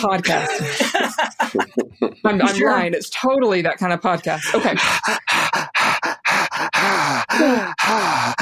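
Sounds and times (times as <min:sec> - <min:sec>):
speech: 0:00.0 - 0:05.8, 0:06.8 - 0:08.3
laughter: 0:00.2 - 0:02.7, 0:04.3 - 0:06.2
exaggerated heavy rasping deep breathing: 0:04.4 - 0:08.3.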